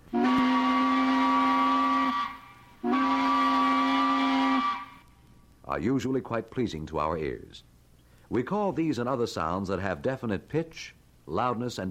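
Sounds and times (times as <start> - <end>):
tugboat sounding its sharp whistle: 0.1 - 5.0
speech: 5.8 - 7.7, 8.3 - 11.8.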